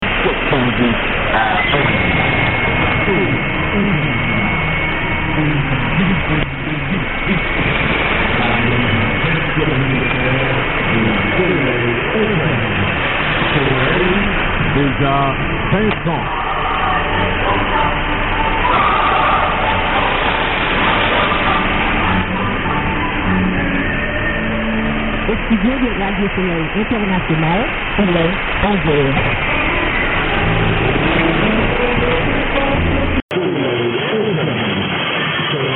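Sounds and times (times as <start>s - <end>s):
AM SSB radio signal: 0.0s - 35.7s.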